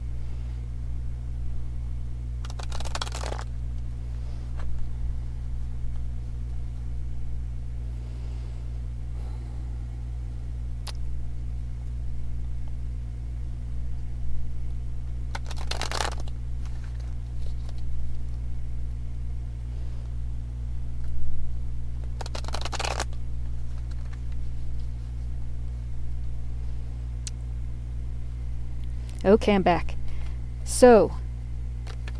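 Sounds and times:
steady low hum: 0.0s - 32.1s
deck of cards being shuffled in riffles: 2.4s - 3.6s, 15.3s - 18.2s, 22.0s - 24.9s, 31.8s - 32.1s
person breathing consciously: 7.9s - 10.2s, 30.0s - 30.4s
speech: 29.2s - 30.0s, 30.7s - 31.2s.

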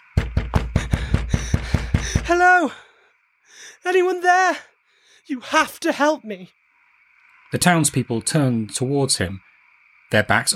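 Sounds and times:
heavy banging on a petrol station door: 0.0s - 2.4s
speech: 2.3s - 2.9s, 3.8s - 4.7s, 5.3s - 6.6s, 7.5s - 9.5s, 10.1s - 10.5s.

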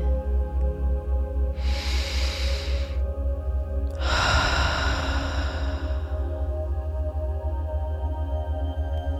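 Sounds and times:
steady low humming drone: 0.0s - 9.1s
slow gentle breathing: 1.6s - 3.2s, 3.9s - 6.6s.

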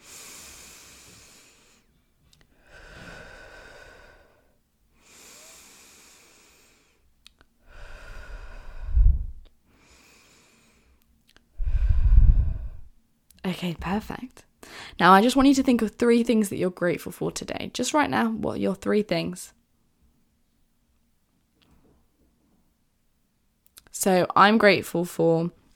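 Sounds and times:
deep breaths in and out: 0.0s - 13.0s, 14.6s - 15.0s
speech: 13.5s - 19.6s, 24.0s - 25.6s.

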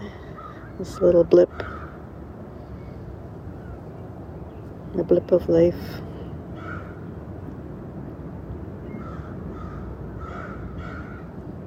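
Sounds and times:
constant low rumbling background: 0.0s - 11.6s
crows cawing in the morning: 0.3s - 2.0s, 6.6s - 7.1s, 9.0s - 11.3s
speech: 0.8s - 1.8s, 5.0s - 6.1s.

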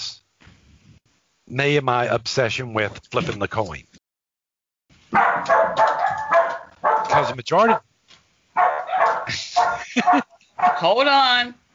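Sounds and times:
speech: 1.5s - 4.0s, 7.2s - 7.9s, 10.0s - 11.7s
female dog barking in a park: 5.1s - 7.8s, 8.6s - 11.0s
laughter: 9.0s - 10.6s.

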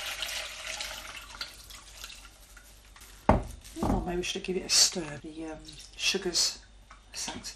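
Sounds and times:
fruit shrub mixture straining through a sieve into a bowl: 0.0s - 3.8s
speech: 3.8s - 6.6s, 7.2s - 7.5s.

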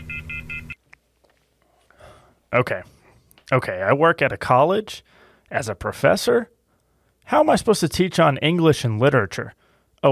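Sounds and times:
telephone call beeps: 0.0s - 0.8s
speech: 2.5s - 6.6s, 7.3s - 10.1s.

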